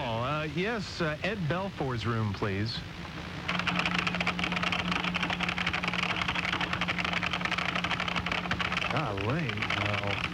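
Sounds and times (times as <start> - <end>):
low constant hum: 0.0 - 10.3
speech: 0.5 - 3.0, 8.9 - 10.3
rapid typing on a computer keyboard: 3.5 - 10.3.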